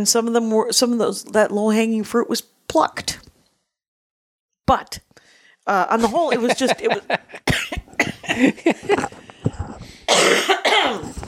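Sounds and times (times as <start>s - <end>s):
speech: 0.0s - 3.3s, 4.7s - 11.2s
laughter: 6.0s - 9.2s
person coughing harshly: 7.4s - 9.1s, 10.1s - 11.2s.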